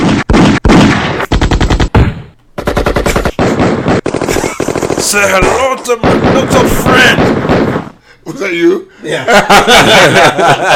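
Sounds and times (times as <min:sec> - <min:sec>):
automatic gunfire bursts: 0:00.0 - 0:08.0
laughter: 0:04.2 - 0:04.9, 0:09.0 - 0:10.7
speech: 0:05.1 - 0:10.7.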